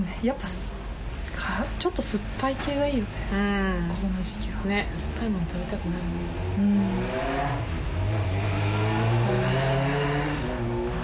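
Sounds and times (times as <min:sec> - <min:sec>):
speech: 0:00.2 - 0:00.8, 0:01.4 - 0:08.5
motorcycle engine revving while passing outside: 0:05.2 - 0:11.0.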